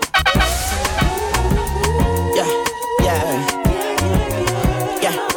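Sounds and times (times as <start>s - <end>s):
tires screeching: 0.2s - 3.6s
engine revving: 0.2s - 5.0s
police car siren wailing: 0.2s - 5.2s.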